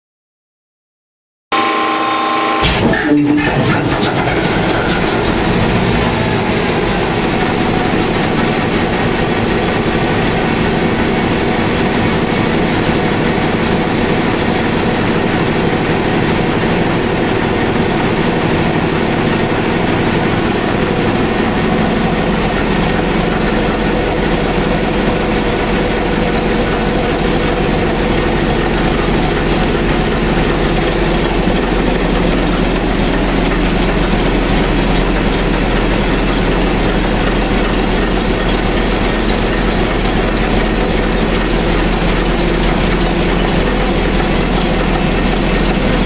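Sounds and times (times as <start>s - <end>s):
motor starting: 1.6s - 46.0s.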